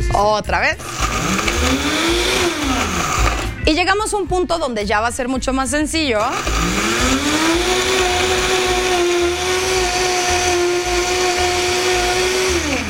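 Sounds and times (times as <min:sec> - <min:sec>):
speech: 0:00.2 - 0:08.1
blender motor grinding dry cookies into crumbs: 0:00.7 - 0:03.6, 0:06.2 - 0:12.8.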